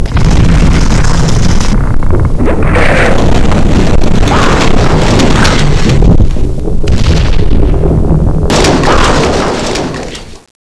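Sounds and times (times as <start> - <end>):
disaster ambience: 0.0 - 10.5.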